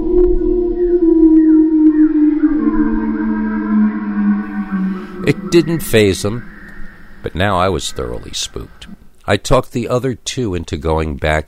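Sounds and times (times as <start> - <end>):
loud angry-sounding howl: 0.0 - 9.1
low rumble: 0.0 - 9.2
speech: 5.5 - 6.5, 7.3 - 11.4.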